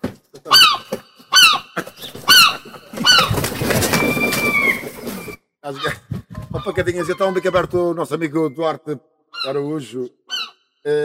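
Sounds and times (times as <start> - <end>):
seagull calls: 0.5 - 8.5, 9.4 - 9.7, 10.3 - 10.6
speech: 5.7 - 6.0, 6.6 - 10.2, 10.8 - 11.0.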